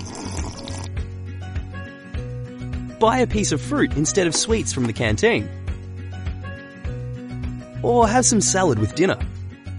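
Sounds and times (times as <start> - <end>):
water pouring into a glass: 0.0 - 1.0
speech: 3.0 - 5.6, 7.8 - 9.3.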